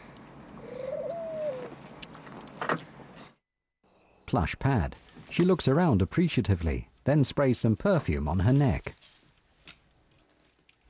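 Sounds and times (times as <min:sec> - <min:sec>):
caged bird cooing: 0:00.6 - 0:01.8
speech: 0:04.3 - 0:09.0.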